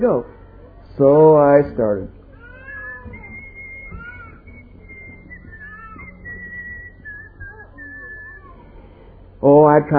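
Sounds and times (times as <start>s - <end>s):
speech: 0.0s - 0.4s, 1.0s - 2.2s, 9.4s - 9.9s
person whistling a wavering tune with trills: 2.8s - 8.6s.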